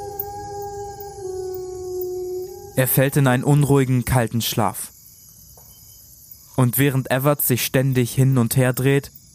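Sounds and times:
wolves howling in the distance: 0:00.0 - 0:04.1
speech: 0:02.8 - 0:05.0, 0:06.6 - 0:09.2.

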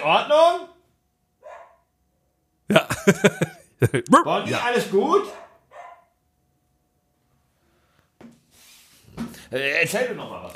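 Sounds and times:
speech: 0:00.0 - 0:00.4, 0:02.7 - 0:05.4, 0:09.5 - 0:10.5
dog barking: 0:01.4 - 0:01.9, 0:05.2 - 0:06.2
laughter: 0:02.7 - 0:04.3.

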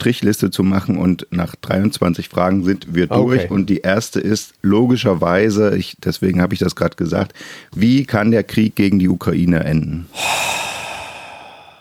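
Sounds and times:
speech: 0:00.0 - 0:10.7
long heavy breathy exhale: 0:10.1 - 0:11.7.

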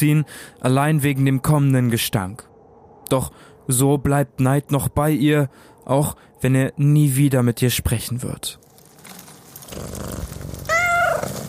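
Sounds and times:
speech: 0:00.0 - 0:02.5, 0:03.1 - 0:08.6, 0:09.7 - 0:10.4
cat purring: 0:09.6 - 0:11.4
cat meowing: 0:10.6 - 0:11.4.

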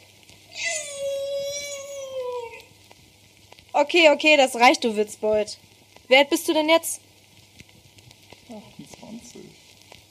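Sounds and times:
person doing a drawn-out wavering meow imitation: 0:00.5 - 0:02.7
speech: 0:03.8 - 0:07.0.

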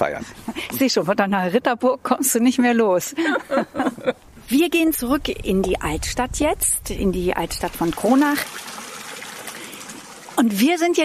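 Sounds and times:
speech: 0:00.0 - 0:08.7, 0:10.4 - 0:11.0
laughter: 0:03.2 - 0:04.2
water splashing from a town fountain: 0:07.1 - 0:11.0.

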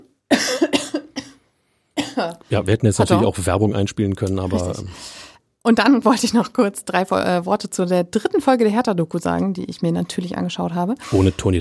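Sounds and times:
person coughing harshly: 0:00.3 - 0:01.4, 0:02.0 - 0:02.3
speech: 0:02.2 - 0:11.5.

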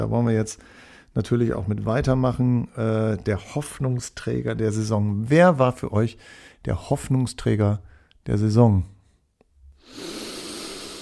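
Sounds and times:
speech: 0:00.0 - 0:08.9
deep inhale: 0:00.6 - 0:01.1, 0:06.2 - 0:06.6, 0:09.8 - 0:11.0
faint brief sniff: 0:09.8 - 0:11.0.

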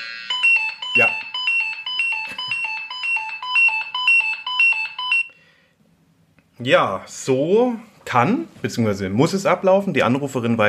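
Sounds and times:
pagers worn on belts beeping: 0:00.0 - 0:05.3
speech: 0:06.6 - 0:10.6.

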